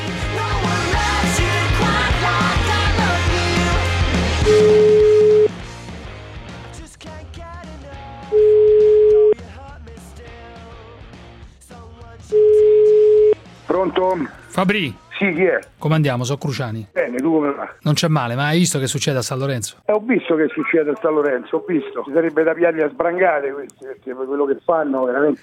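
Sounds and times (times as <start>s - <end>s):
music: 0.0s - 16.8s
telephone ringback tones as a call is placed: 4.5s - 5.6s, 8.3s - 9.4s, 12.3s - 13.4s
speech: 14.6s - 25.4s.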